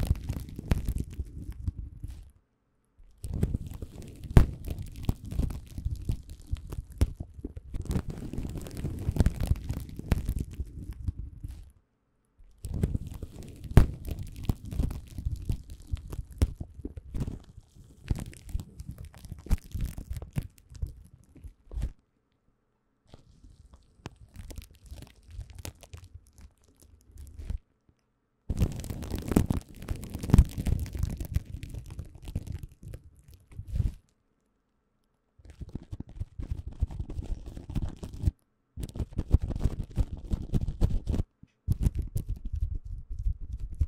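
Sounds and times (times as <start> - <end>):
bubble wrap handled with crinkling and crackling: 0.0 - 2.4, 3.1 - 11.8, 12.5 - 22.0, 23.1 - 27.7, 28.5 - 34.2, 35.4 - 42.6.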